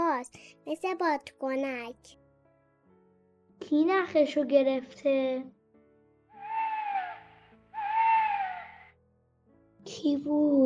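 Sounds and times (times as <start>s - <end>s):
speech: 0.2s - 2.2s, 3.6s - 5.6s, 9.8s - 10.6s
owl hooting: 6.4s - 8.9s.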